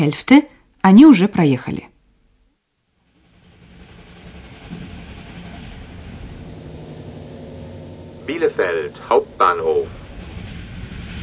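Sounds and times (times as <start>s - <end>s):
speech: 0.0s - 1.9s, 8.3s - 10.0s
train rumbling along tracks through Westphalia: 3.0s - 11.2s.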